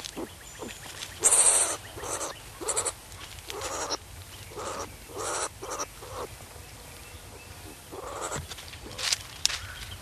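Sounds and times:
striped skunk giving breathy hissing bursts: 0.1 - 6.3, 7.3 - 9.1.

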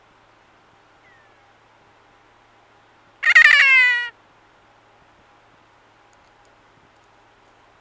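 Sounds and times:
kea screeching: 3.2 - 4.1.

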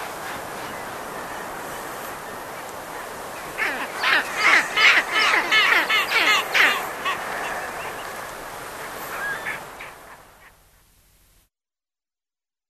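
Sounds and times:
South polar skua harsh rapid repeated calls: 2.4 - 10.8.

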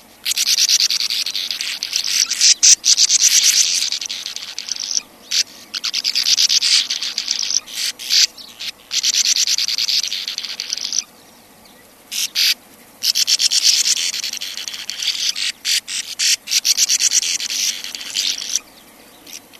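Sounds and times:
sand martin chattering: 0.0 - 11.2, 12.1 - 19.5.

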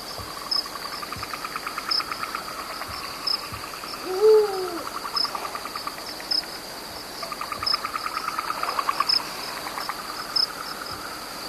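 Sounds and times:
high-pitched cricket chirps: 0.0 - 11.4
rhythmic insect pulses: 0.0 - 11.4
Eurasian eagle-owl call: 4.0 - 4.9.

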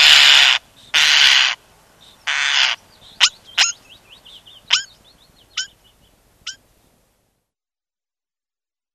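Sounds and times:
European starling giving harsh hissing screeches: 0.0 - 1.6.

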